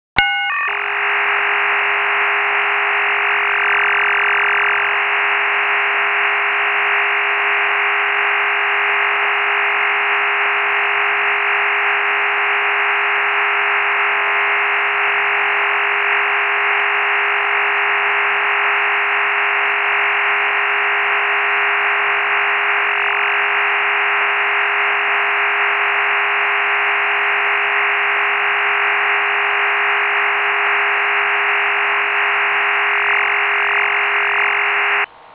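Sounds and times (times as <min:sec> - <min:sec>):
MIL-STD 188-110A/B Appendix B 39-tone parallel modem signal: 0:00.2 - 0:35.1.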